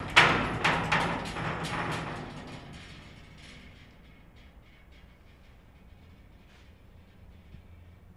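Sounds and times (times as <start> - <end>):
jail door light rattle: 0.0 - 6.4.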